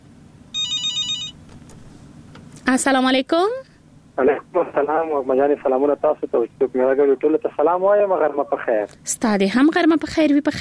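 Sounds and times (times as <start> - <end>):
telephone ringing on an outgoing call: 0.5 - 1.5
speech: 2.7 - 10.6.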